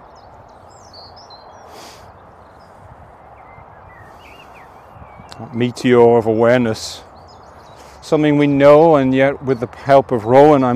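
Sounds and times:
birds chirping and trilling: 0.0s - 10.7s
road traffic rumble: 0.0s - 10.7s
speech: 5.4s - 7.1s, 8.1s - 10.7s.

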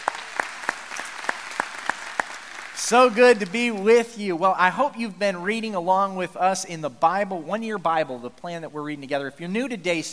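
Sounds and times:
audience clapping hands in welcome in a large room: 0.0s - 4.3s
speech: 2.8s - 10.1s.

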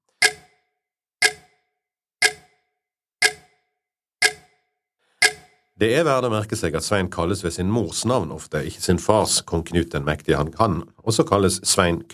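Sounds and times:
clock ticking: 0.0s - 1.6s, 2.2s - 2.6s, 3.2s - 3.6s, 4.2s - 4.6s, 5.2s - 5.7s
speech: 5.8s - 12.1s.

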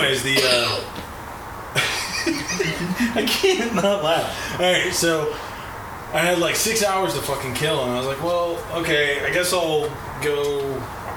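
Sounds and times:
speech: 0.0s - 1.0s, 1.8s - 5.5s, 6.1s - 11.0s
single short cough: 0.3s - 0.9s
laughter: 1.8s - 4.6s
faint breathy sounds: 2.9s - 3.3s, 4.2s - 4.6s, 5.3s - 5.9s.

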